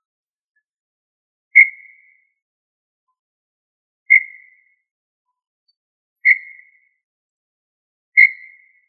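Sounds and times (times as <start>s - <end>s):
tinamou whistles: 1.5s - 2.3s, 4.1s - 4.8s, 6.2s - 7.0s, 8.2s - 8.8s.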